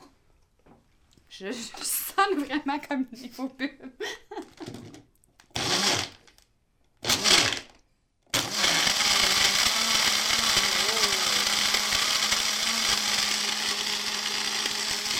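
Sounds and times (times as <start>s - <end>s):
speech: 1.4s - 4.2s
blender motor crushing ice and fresh fruit with liquid: 5.6s - 6.3s, 7.0s - 7.7s, 8.4s - 15.1s.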